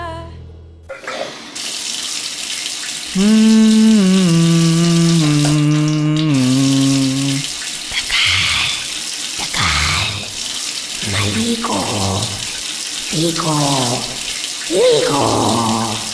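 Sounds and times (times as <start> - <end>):
running shower water: 0.9 - 16.1
speech: 3.1 - 3.6.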